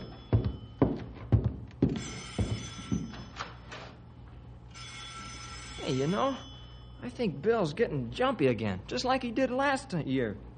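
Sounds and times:
heavy thumps: 0:00.0 - 0:03.4
telephone bell ringing: 0:01.8 - 0:03.9, 0:04.7 - 0:07.2
speech: 0:05.9 - 0:10.5.

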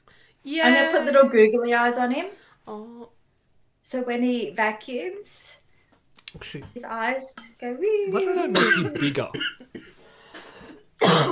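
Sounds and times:
speech: 0:00.4 - 0:03.2, 0:03.8 - 0:05.6, 0:06.3 - 0:09.7
person coughing: 0:08.4 - 0:10.0, 0:11.0 - 0:11.2.

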